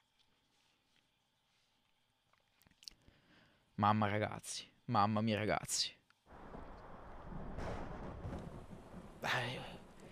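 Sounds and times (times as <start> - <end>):
speech: 3.8 - 6.0
low continuous rumble of thunder in video game intro: 6.3 - 10.1
steady rain in video game intro: 6.3 - 10.1.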